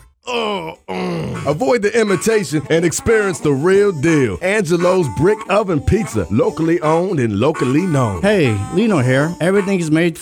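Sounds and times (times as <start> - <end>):
drawn-out tonal mouth-made groan imitating an upset stomach: 0.2 - 1.7
speech: 1.4 - 10.2.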